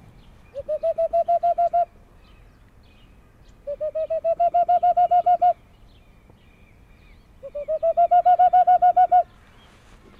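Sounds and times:
hand-whistled imitation of boreal owl call: 0.5 - 1.9, 3.6 - 5.6, 7.4 - 9.3.

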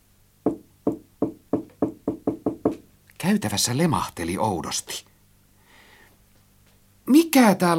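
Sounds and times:
knocking on a wooden door: 0.4 - 2.8
speech: 3.2 - 5.1, 7.3 - 7.7.

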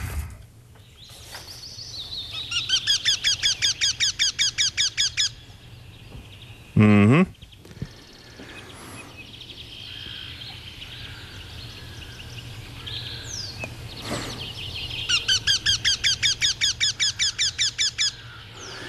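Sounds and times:
faint noise: 0.0 - 18.8
Eurasian wryneck calling: 1.8 - 18.8
speech: 6.8 - 7.4.

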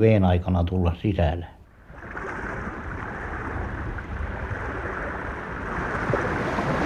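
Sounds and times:
speech: 0.0 - 1.6
sea waves washing against the harbour shore: 1.8 - 6.8.

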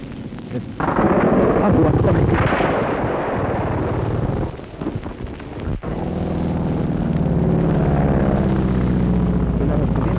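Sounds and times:
fighter plane engines droning: 0.0 - 10.1
machine-gun fire from fighter planes shooting at a military car: 0.8 - 5.7.

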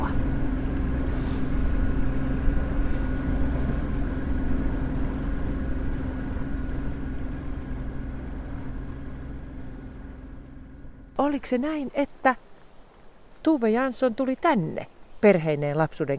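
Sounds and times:
motorboat engine droning on water: 0.0 - 12.2
speech: 11.2 - 12.5, 13.4 - 16.1.

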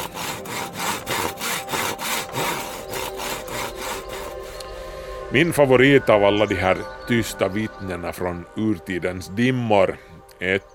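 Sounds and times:
hand saw cutting through wood: 0.0 - 4.7
speech: 5.3 - 10.7.

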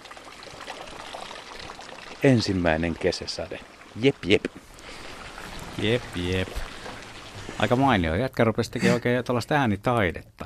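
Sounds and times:
water pouring out of a bucket: 0.0 - 8.1
speech: 2.2 - 4.6, 5.8 - 6.6, 7.6 - 10.4.

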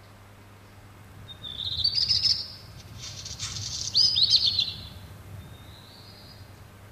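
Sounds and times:
low steady rumble: 0.0 - 6.8
black redstart singing: 1.2 - 6.6.

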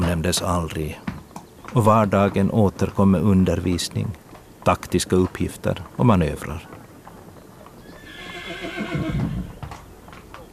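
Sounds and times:
heavy hooves thudding and clopping: 0.0 - 10.5
speech: 0.1 - 1.1, 1.7 - 6.7
horse whinnying: 7.8 - 9.6.

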